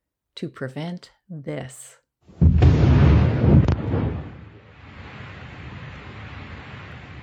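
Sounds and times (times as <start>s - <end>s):
speech: 0.4s - 2.8s
massive undersea mine explosion underwater: 2.4s - 7.2s.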